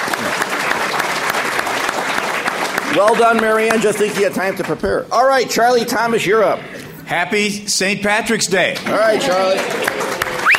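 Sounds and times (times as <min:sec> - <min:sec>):
audience applause at a St. Patrick's Day speaking event: 0:00.0 - 0:04.8, 0:08.8 - 0:10.5
speech: 0:02.9 - 0:10.2.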